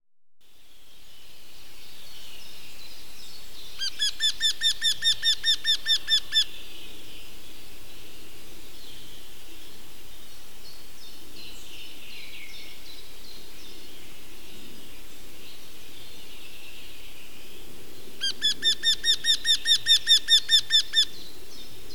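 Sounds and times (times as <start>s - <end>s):
wryneck calling: 3.8s - 6.5s, 18.2s - 21.2s.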